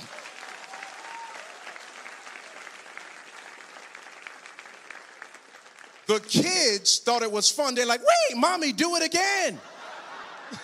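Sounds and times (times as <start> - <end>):
audience clapping: 0.0 - 6.8
speech: 6.1 - 9.7
laughter: 9.4 - 10.6.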